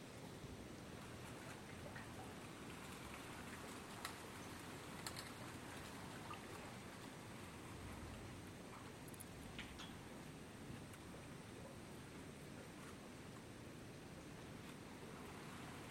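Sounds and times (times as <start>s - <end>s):
rain-like hiss outdoors in Big Cypress Preserve Florida: 0.0s - 15.9s
faint ticks: 3.5s - 6.5s, 8.7s - 10.1s.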